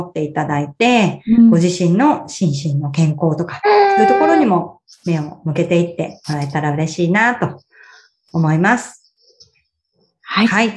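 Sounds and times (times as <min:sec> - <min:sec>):
speech: 0:00.0 - 0:07.7, 0:08.3 - 0:09.0, 0:10.3 - 0:10.7
baby babbling: 0:03.6 - 0:05.3
adult talking in a calm conversational voice: 0:03.7 - 0:05.4, 0:06.1 - 0:06.6.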